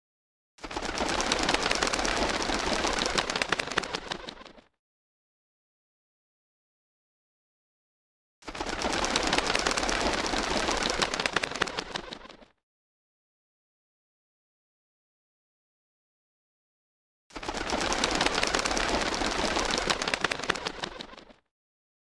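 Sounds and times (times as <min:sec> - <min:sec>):
flock of birds flying: 0:00.6 - 0:04.7, 0:08.5 - 0:12.5, 0:17.4 - 0:21.4.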